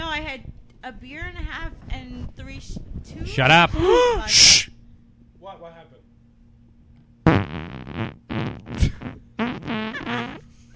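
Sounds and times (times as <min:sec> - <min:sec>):
speech: 0:00.3 - 0:04.6, 0:05.4 - 0:06.1
sputtering farts during diarrhea: 0:07.3 - 0:10.5.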